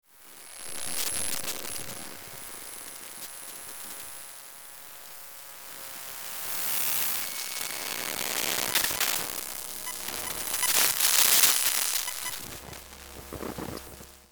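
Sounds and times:
laptop glitches and noise: 0.2 - 14.3.

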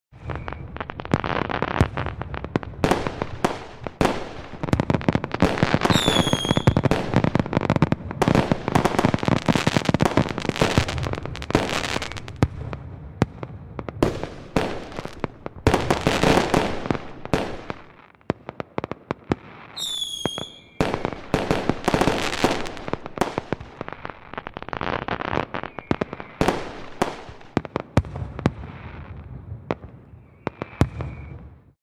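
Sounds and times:
firework rockets: 0.1 - 31.8
various fireworks in a grand finale display: 0.1 - 31.8.

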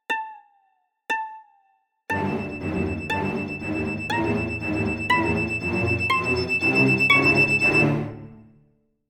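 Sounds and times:
symphonic drama string suspense build-up: 2.1 - 8.6.

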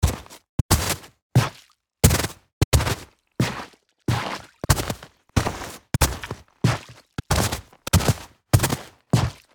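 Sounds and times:
footsteps of boots walking on snow: 0.0 - 9.5.

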